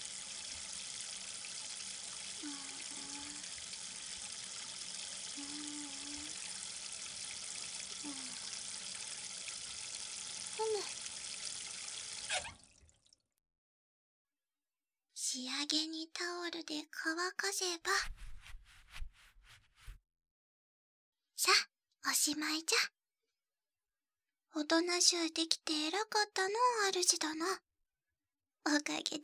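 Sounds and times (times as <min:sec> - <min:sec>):
running water pouring from a tap: 0:00.0 - 0:12.9
hands rinsed under running tap water: 0:01.8 - 0:06.9
speech: 0:15.6 - 0:18.2, 0:22.2 - 0:23.0, 0:24.6 - 0:27.6, 0:28.6 - 0:29.2.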